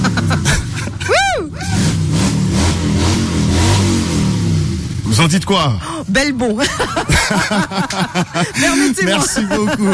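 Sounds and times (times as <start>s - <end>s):
laughter: 0.0s - 1.8s, 6.6s - 9.9s
Harley-Davidson motorcycle engine revving and idling: 0.0s - 5.3s
speech: 5.2s - 9.9s.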